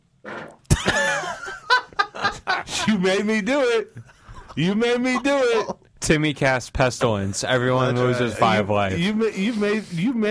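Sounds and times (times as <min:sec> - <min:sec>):
loud squeaky fart: 0:00.2 - 0:00.7
laughter: 0:00.7 - 0:05.8
speech: 0:02.8 - 0:04.0, 0:04.6 - 0:10.3.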